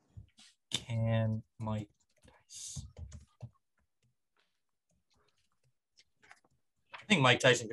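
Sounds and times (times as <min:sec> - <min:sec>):
speech: 0:00.9 - 0:02.8, 0:07.1 - 0:07.7
typing on a computer keyboard: 0:02.9 - 0:03.6.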